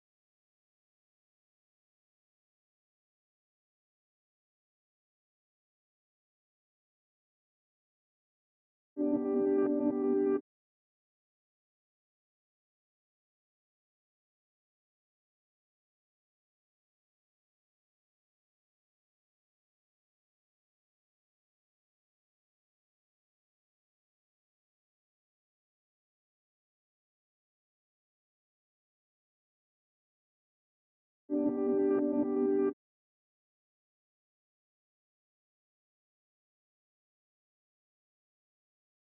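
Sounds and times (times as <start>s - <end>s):
reversed piano melody in A minor at 86 BPM: 9.0s - 10.4s, 31.3s - 32.8s.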